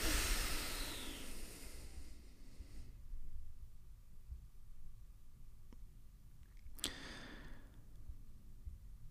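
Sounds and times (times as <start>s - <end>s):
long forceful exhale through the mouth: 0.0s - 2.9s, 6.8s - 7.7s
soft puff of breath: 0.0s - 2.9s.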